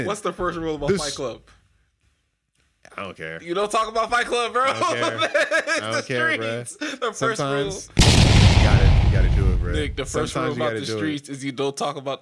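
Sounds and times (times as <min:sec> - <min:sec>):
speech: 0:00.0 - 0:01.6, 0:02.9 - 0:12.2
laughter: 0:04.6 - 0:07.1
gunfire shot into the air outside on the street: 0:08.0 - 0:10.4.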